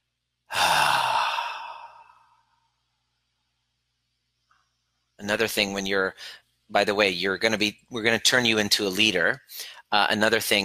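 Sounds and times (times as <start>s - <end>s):
seated person drawing a deep breath in: 0.5s - 2.6s
speech: 5.2s - 10.6s.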